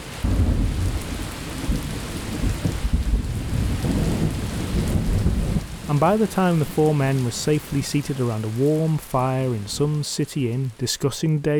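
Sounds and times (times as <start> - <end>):
heavy rain of large drops pouring: 0.0 - 11.5
deep thunder rolling and rumbling: 0.2 - 7.6
speech: 5.9 - 11.5.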